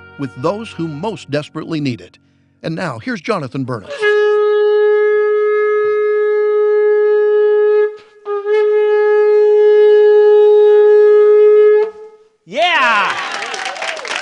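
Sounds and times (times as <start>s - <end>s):
shofar blasts with a bright reedy tone: 0.0s - 1.4s, 3.7s - 12.3s
speech: 0.2s - 4.2s.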